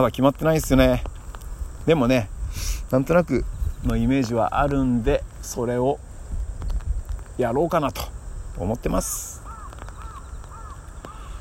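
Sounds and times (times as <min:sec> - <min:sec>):
speech: 0:00.0 - 0:01.1, 0:01.8 - 0:06.1, 0:07.4 - 0:09.4
crow cawing: 0:09.4 - 0:11.3.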